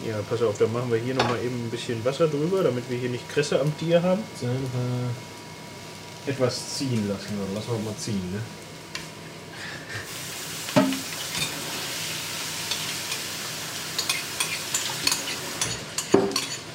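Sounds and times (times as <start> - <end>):
cherries and onions sizzling in a frying pan: 0.0 - 16.7
speech: 0.1 - 5.3, 6.3 - 8.6
stirring scraping clinks in a frying pan: 14.0 - 16.7.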